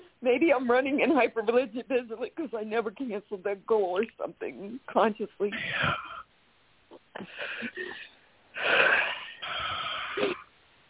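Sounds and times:
speech: 0.2 - 6.3, 6.9 - 9.2
deep audible breathing close to the mic: 7.2 - 10.2.

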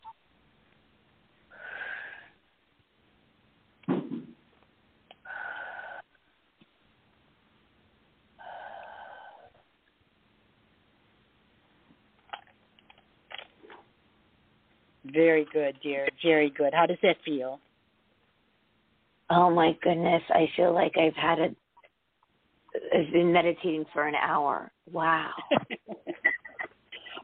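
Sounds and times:
deep breathing during a guided breathing exercise: 1.5 - 2.4, 5.2 - 6.2, 8.4 - 9.7
speech: 15.1 - 17.7, 19.3 - 21.6, 23.0 - 25.7.

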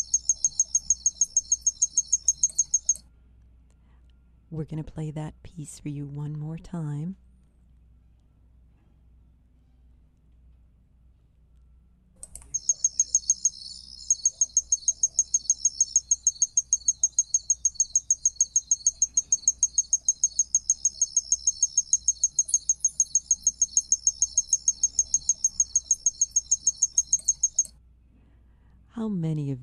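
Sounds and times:
tinkling ground cricket chirping: 0.0 - 3.0, 12.5 - 27.7
faint low hum: 0.0 - 29.6
speech: 4.5 - 7.2.

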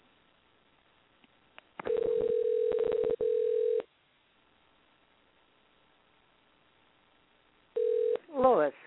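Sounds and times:
steady telephone dial tone: 1.8 - 3.9, 7.8 - 8.2.

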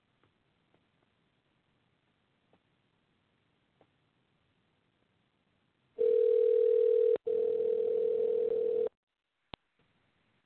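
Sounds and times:
telephone tone of a call placed to a cell phone: 6.0 - 9.0.

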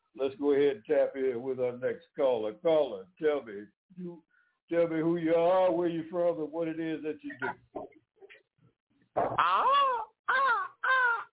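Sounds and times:
speech: 0.2 - 8.0, 9.2 - 10.1
person imitating a crow's raspy caws: 9.2 - 11.3.

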